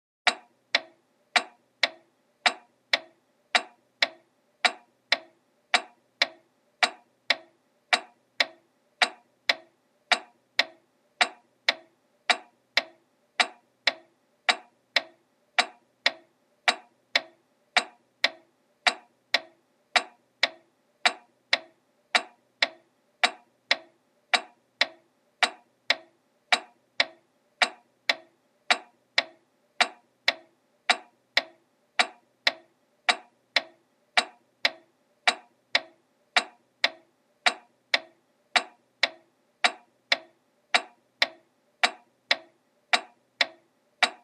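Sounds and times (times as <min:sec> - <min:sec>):
clock pendulum ticking: 0:00.2 - 0:44.2.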